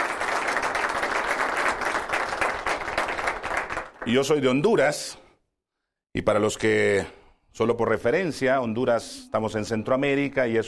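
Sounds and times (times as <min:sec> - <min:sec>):
room full of people applauding: 0:00.0 - 0:04.3
speech: 0:04.0 - 0:05.2, 0:06.1 - 0:10.6.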